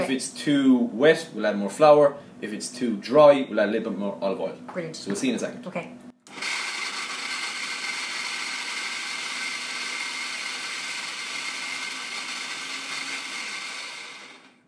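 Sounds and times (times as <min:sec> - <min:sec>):
speech: 0:00.1 - 0:06.5
food mixer blending dough with flour, herbs, lemon zest and olive oil: 0:06.2 - 0:14.6.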